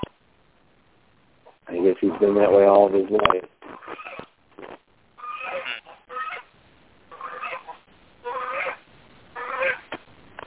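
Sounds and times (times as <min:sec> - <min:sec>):
speech: 0:01.8 - 0:04.0
gander honking: 0:05.2 - 0:06.5, 0:07.1 - 0:08.8, 0:09.4 - 0:09.9.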